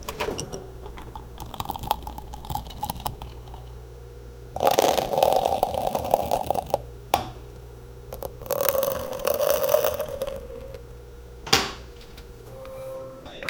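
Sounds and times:
cup of coffee spilling: 0.0 - 3.9, 4.5 - 6.9, 8.0 - 10.9.

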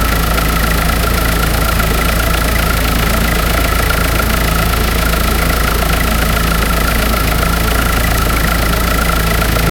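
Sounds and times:
six-cylinder gasoline engine running: 0.0 - 9.7.

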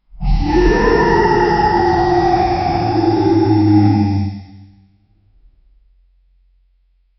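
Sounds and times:
troll roar: 0.1 - 4.8.

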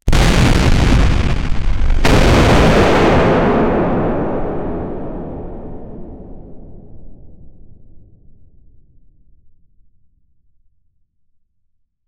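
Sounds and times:
explosion: 0.0 - 8.3.

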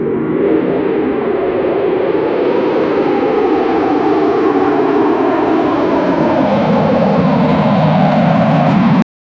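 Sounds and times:
fighter jet engine on ground: 0.0 - 9.0.

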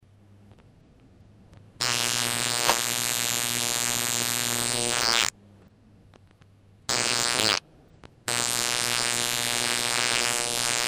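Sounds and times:
electronic fart: 1.8 - 5.3, 6.9 - 7.6, 8.3 - 10.8.

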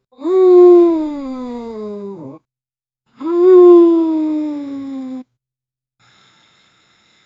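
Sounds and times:
long low moan of frustration: 0.2 - 2.4, 3.2 - 5.2.

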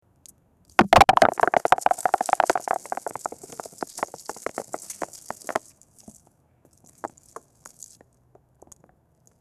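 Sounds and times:
rocks falling: 0.8 - 6.2.

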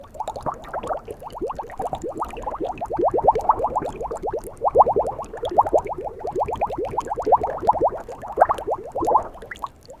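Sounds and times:
very slow gentle bubbles: 0.0 - 9.9.

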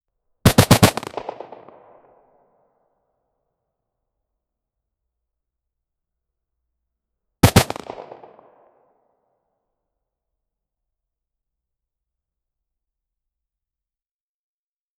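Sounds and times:
AK-47 gunfire: 0.5 - 2.1, 7.4 - 8.8.

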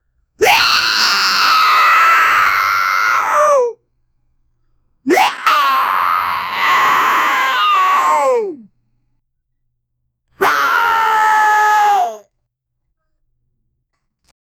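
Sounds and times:
anime boy screaming angrily: 0.4 - 3.8, 5.1 - 8.6, 10.4 - 12.2.

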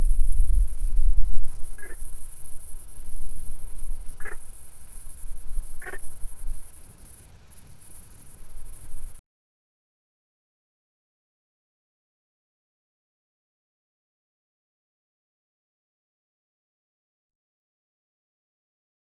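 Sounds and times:
savanna insects: 0.0 - 9.2.

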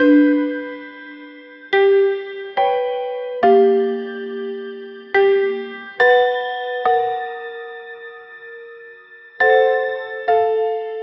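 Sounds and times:
cute piano jingle: 1.7 - 8.0, 9.4 - 11.0.

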